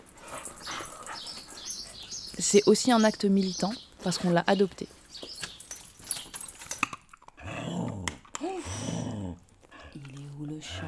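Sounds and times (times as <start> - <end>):
female labrador-shepherd mix dog whimpering: 0.3 - 2.3
speech: 2.4 - 5.0.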